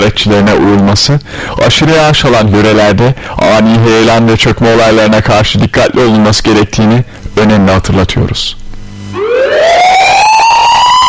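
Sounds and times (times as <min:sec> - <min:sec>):
speech: 0:00.0 - 0:08.6
ambulance siren wailing: 0:09.1 - 0:11.0.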